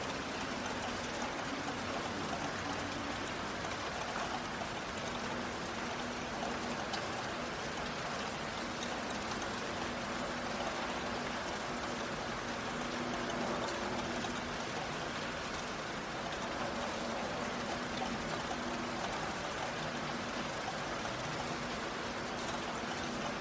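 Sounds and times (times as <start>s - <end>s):
faint drips and taps: 0.0s - 23.3s
heavy rain pouring down in a city: 0.0s - 23.3s
low constant hum: 0.0s - 23.3s.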